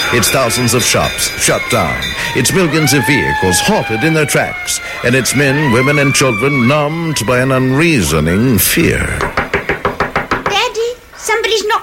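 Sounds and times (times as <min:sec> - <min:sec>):
speech: 0:00.1 - 0:09.4, 0:11.3 - 0:11.8
knocking on a door: 0:09.2 - 0:10.6.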